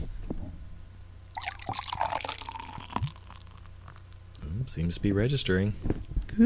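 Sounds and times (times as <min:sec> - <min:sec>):
dark brown ale pouring into a glass: 0:01.3 - 0:04.1
speech: 0:04.7 - 0:06.4.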